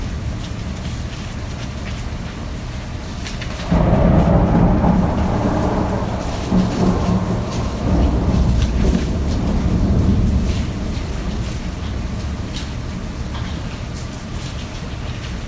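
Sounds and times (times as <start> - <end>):
hiss of heavy rain: 0.0 - 15.4
deep rolling thunder: 3.6 - 13.4.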